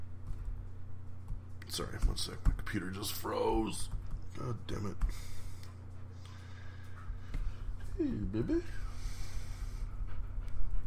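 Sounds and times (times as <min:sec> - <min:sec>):
low hum: 0:00.0 - 0:10.8
speech: 0:01.7 - 0:05.4, 0:08.0 - 0:08.8
female dog panting: 0:05.0 - 0:10.8.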